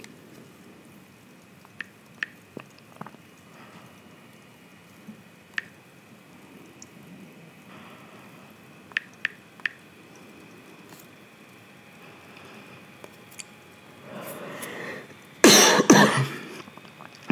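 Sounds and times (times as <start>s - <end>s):
faint tapping clicks: 0.0s - 5.8s, 7.7s - 13.6s
person coughing: 15.4s - 16.6s.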